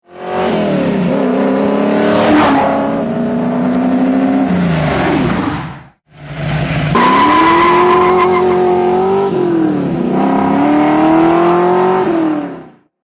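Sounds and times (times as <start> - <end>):
Shelby GT 500 car engine heard from outside: 0.2 - 12.8.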